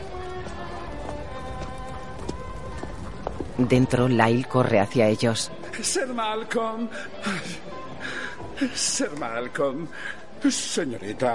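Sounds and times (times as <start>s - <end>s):
horse-drawn carriage hooves clattering past a tree-lined mansion at night: 0.0s - 6.0s
speech: 3.6s - 7.8s, 8.6s - 11.3s.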